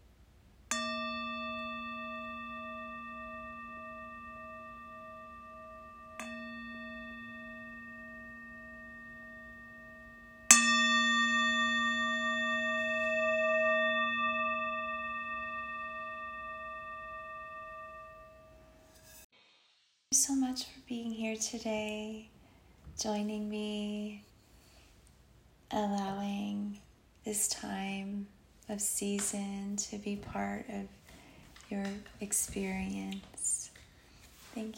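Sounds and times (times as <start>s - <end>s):
meditation bell ringing: 0.7s - 19.3s
speech: 20.1s - 22.4s, 23.0s - 24.3s, 25.7s - 31.0s, 31.7s - 33.4s, 34.6s - 34.7s.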